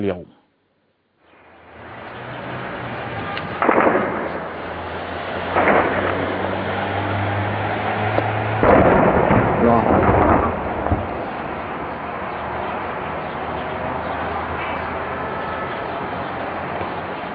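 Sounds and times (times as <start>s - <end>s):
speech: 0.0s - 0.4s
low rumbling barrage: 1.4s - 17.3s
explosions echoing at a distance: 3.2s - 12.8s
heavy gunfire echoing at a distance: 3.5s - 13.2s.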